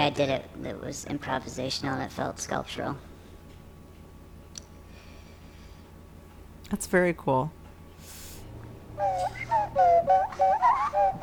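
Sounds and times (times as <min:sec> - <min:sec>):
speech: 0:00.0 - 0:03.1, 0:06.7 - 0:08.2, 0:09.0 - 0:11.2
nose flute playing a breathy whistle-like melody: 0:09.0 - 0:11.2.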